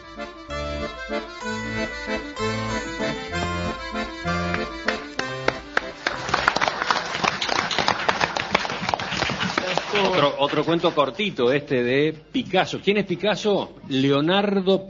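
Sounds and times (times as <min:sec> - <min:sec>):
music: 0:00.0 - 0:07.9
crowd applause for a storyteller: 0:02.7 - 0:11.2
speech: 0:10.2 - 0:14.8.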